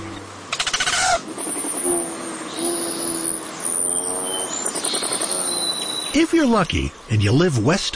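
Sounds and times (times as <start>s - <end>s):
courting male Rufous hummingbird whirring wing buzz: 0.0s - 6.2s
faint outdoor hiss: 0.0s - 7.9s
Rufous hummingbird thin high chattering notes and squeaks: 0.5s - 7.4s
speech: 6.2s - 7.9s.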